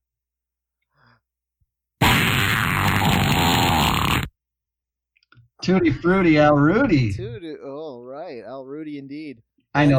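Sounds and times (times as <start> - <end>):
fart sound effect: 2.0 - 4.3
speech: 5.6 - 9.9.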